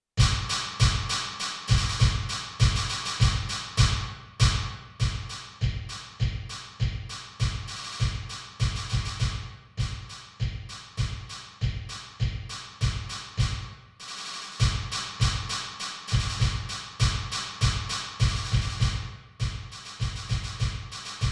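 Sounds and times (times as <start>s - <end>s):
snare drum: 0.2s - 21.3s.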